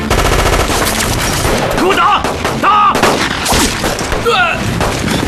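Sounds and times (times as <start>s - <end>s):
machine gun fire: 0.1s - 5.1s
people shouting: 1.8s - 3.4s, 4.1s - 4.8s.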